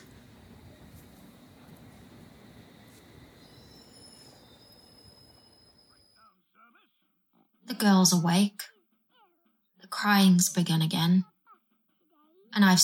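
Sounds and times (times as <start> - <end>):
train rumbling: 0.0 - 6.1
train metal wheels squealing: 0.0 - 6.2
speech: 7.8 - 8.7, 10.0 - 11.3, 12.6 - 12.8.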